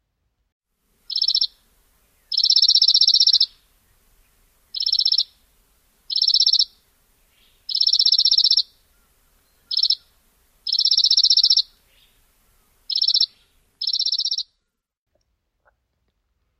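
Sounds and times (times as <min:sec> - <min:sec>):
chipping sparrow trilling: 0:01.0 - 0:03.6, 0:04.7 - 0:05.4, 0:06.1 - 0:14.6.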